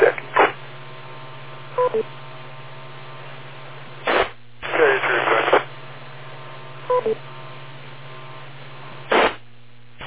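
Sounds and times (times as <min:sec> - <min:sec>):
steady band-limited radio hiss: 0:00.0 - 0:00.6, 0:04.0 - 0:05.8, 0:09.0 - 0:09.4
speech: 0:01.9 - 0:02.2
radio repeater courtesy beep tones: 0:06.9 - 0:07.2.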